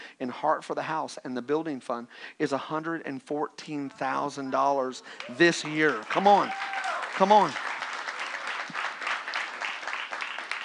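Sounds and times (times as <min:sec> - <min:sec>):
speech: 0:00.2 - 0:07.7
audience giving light scattered applause: 0:05.0 - 0:10.6.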